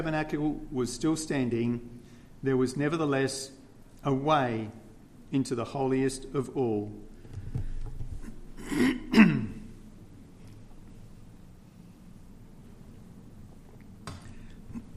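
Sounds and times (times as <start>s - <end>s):
speech: 0.0s - 7.7s
person coughing: 8.6s - 9.7s.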